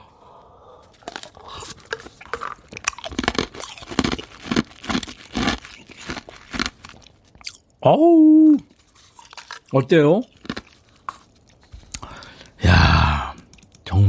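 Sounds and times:
chewing and crunching ice: 0.8 - 7.7, 8.7 - 12.4
speech: 7.8 - 8.7, 9.7 - 10.4.

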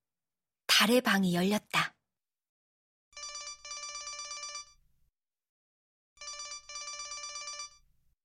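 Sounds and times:
speech: 0.8 - 1.9
mobile phone electronic ringtone: 3.2 - 4.8, 6.2 - 7.9.

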